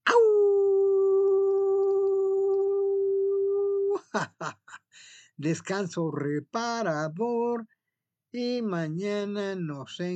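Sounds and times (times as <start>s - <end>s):
person imitating a wolf howl: 0.0s - 4.0s
speech: 4.2s - 10.1s.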